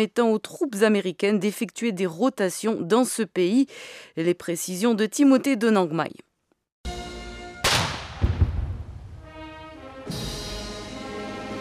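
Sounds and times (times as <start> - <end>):
speech: 0.0 - 6.3
ceremonial cannon shot booming and echoing: 7.6 - 9.2
brass band music: 9.1 - 11.5.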